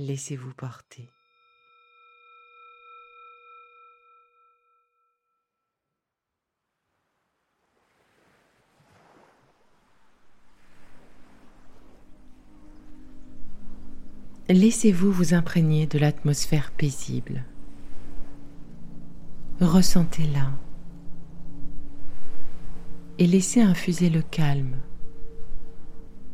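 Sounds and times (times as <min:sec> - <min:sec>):
speech: 0:00.0 - 0:01.2, 0:14.5 - 0:17.5, 0:19.6 - 0:20.6, 0:23.2 - 0:24.9
tonal drone: 0:01.1 - 0:05.4, 0:12.0 - 0:26.3
sea waves surging: 0:06.7 - 0:14.5, 0:16.1 - 0:26.3.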